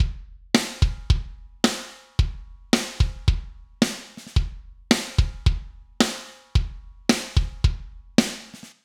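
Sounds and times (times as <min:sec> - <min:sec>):
kick drum: 0:00.0 - 0:03.8, 0:04.4 - 0:05.9, 0:06.6 - 0:08.2
snare drum: 0:00.0 - 0:08.8.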